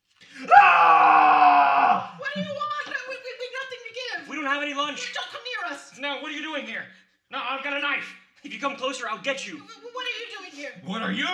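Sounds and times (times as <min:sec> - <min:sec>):
man screaming to startle someone: 0:00.4 - 0:02.1
speech: 0:05.0 - 0:09.8, 0:10.6 - 0:11.3.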